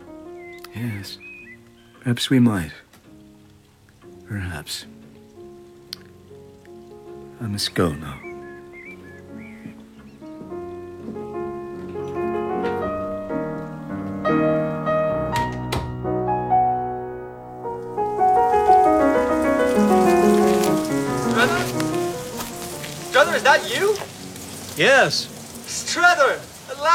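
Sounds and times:
rain falling outdoors at midnight: 0.0s - 15.7s, 17.6s - 26.9s
tonal music: 0.0s - 25.7s
speech: 0.8s - 1.3s, 2.0s - 2.8s, 4.3s - 5.0s, 7.4s - 8.3s, 25.0s - 25.3s
sharp splashes: 18.1s - 26.9s.

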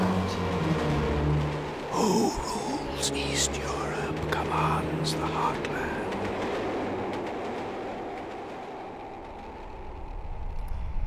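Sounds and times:
passenger train rolling along rails heard from inside: 0.0s - 11.0s
speech: 3.1s - 3.8s, 4.5s - 5.8s.

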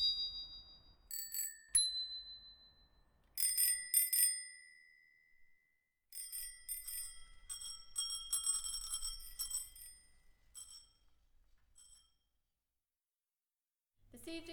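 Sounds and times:
smiley bell on an ice-cream-green bicycle ringing: 0.0s - 5.4s, 6.2s - 11.2s, 11.8s - 12.2s
speech: 14.3s - 14.5s.

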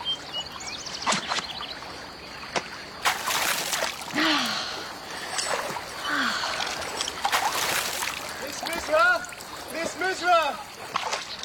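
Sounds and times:
water sloshing and splashing in a high river with strong currents: 0.0s - 11.4s.

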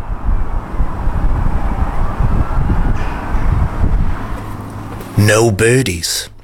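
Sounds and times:
wind-stirred trees rustling: 0.0s - 5.2s
faint siren wailing far off: 0.6s - 4.4s
constant hiss of distant traffic: 4.3s - 6.4s
speech: 5.2s - 6.3s.

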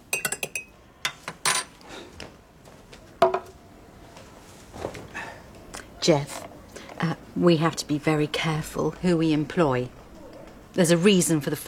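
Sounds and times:
cups and spoon clinking as tea is made: 0.1s - 1.7s
speech: 6.0s - 6.4s, 7.0s - 10.0s, 10.8s - 11.6s.

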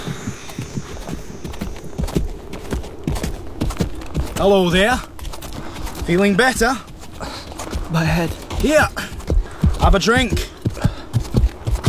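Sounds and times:
faint high whine: 0.0s - 4.9s
hooves of a horse carrying panniers clip-clopping at a walk: 0.0s - 11.8s
speech: 4.4s - 5.1s, 6.1s - 6.9s, 7.9s - 9.1s, 9.8s - 10.5s.

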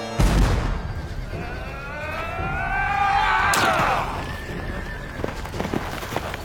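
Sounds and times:
battlefield commotion: 0.0s - 6.4s
single heavy cannon blast: 0.2s - 1.2s
restless rumble of hooves: 1.0s - 6.4s.

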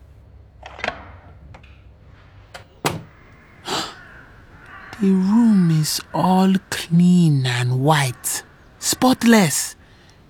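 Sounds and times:
guest-room door latch clicking as a swipe key card opens it: 2.6s - 3.2s
guest-room door opened with a swipe key card swinging open: 2.6s - 3.3s
speech: 5.0s - 9.8s.

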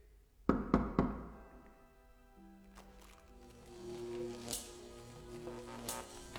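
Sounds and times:
sharp knocks on a wooden door as a signal: 0.5s - 1.3s
soft sustained tones: 1.6s - 6.3s.

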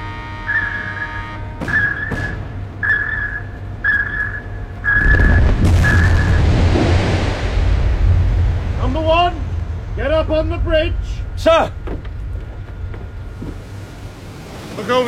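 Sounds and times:
high whistling tone of depth charges being fired: 0.3s - 6.4s
depth charges exploding from a warship attacking a submarine: 4.9s - 14.6s
speech: 10.3s - 11.8s, 14.8s - 15.0s.

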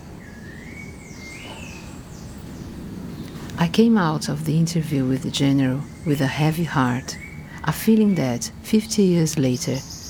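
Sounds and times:
faint birdsong from tropical forest on the hills: 0.0s - 3.6s, 7.0s - 8.4s, 9.4s - 10.0s
steady hiss: 0.0s - 10.0s
speech: 3.6s - 10.0s.

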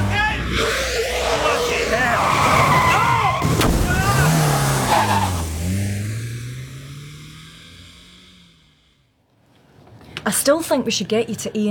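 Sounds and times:
car tires squealing: 0.0s - 6.8s
stolen car engine revving hard while speeding past: 3.4s - 9.1s
speech: 10.3s - 11.6s.

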